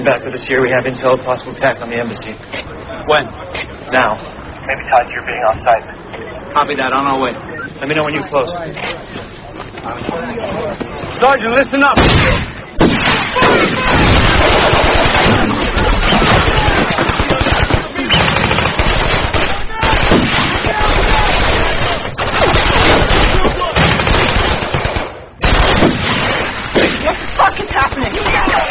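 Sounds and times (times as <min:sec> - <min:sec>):
speech: 0:00.0 - 0:12.5
sniper gunfire on a convoy: 0:12.0 - 0:28.6.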